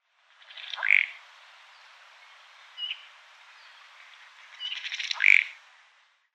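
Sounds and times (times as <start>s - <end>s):
ruddy duck Oxyura jamaicensis: 0.7s - 1.1s, 5.0s - 5.5s.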